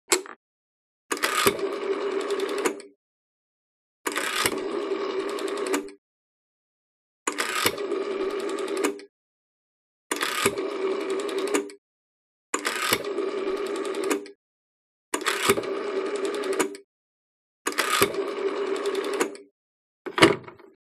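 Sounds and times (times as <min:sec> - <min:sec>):
foreign rotary phone dialing: 0:01.1 - 0:02.8, 0:04.1 - 0:06.0, 0:07.3 - 0:09.0, 0:10.1 - 0:11.8, 0:12.6 - 0:14.4, 0:15.2 - 0:16.8, 0:17.7 - 0:19.5.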